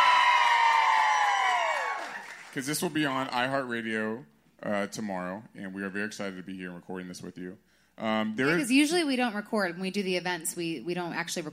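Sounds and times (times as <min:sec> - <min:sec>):
live audience cheering: 0:00.0 - 0:02.8
speech: 0:02.6 - 0:11.5.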